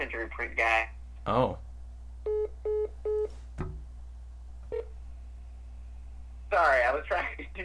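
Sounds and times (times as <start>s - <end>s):
speech: 0.0s - 1.7s
phone electronic beeps as a call is accepted: 2.3s - 3.3s
soft thump: 3.5s - 3.9s.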